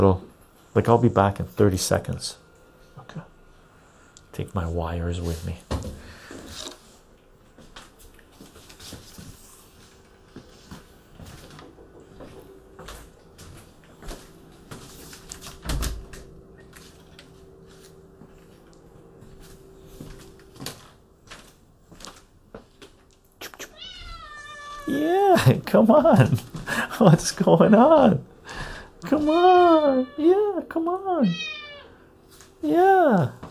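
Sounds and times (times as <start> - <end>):
speech: 0.0 - 2.4, 3.0 - 3.3, 4.4 - 6.7, 25.7 - 26.4, 27.0 - 28.3, 29.1 - 31.5, 32.6 - 33.4
low steady hum: 0.0 - 33.4
door being opened: 15.4 - 16.4
cat meowing: 23.6 - 25.0, 29.1 - 30.4, 31.2 - 32.0.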